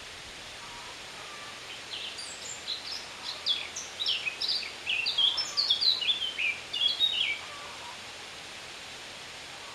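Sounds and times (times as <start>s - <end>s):
background hiss: 0.0s - 9.7s
Eurasian blackcap Sylvia atricapilla singing: 2.0s - 7.4s.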